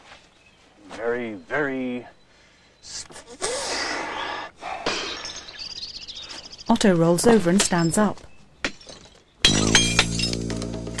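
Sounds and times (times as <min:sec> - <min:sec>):
speech: 0:01.0 - 0:02.2, 0:06.8 - 0:08.3
glass shards tinkling and clattering: 0:05.1 - 0:06.2, 0:08.7 - 0:10.5
glass door panel being smashed: 0:08.6 - 0:10.9.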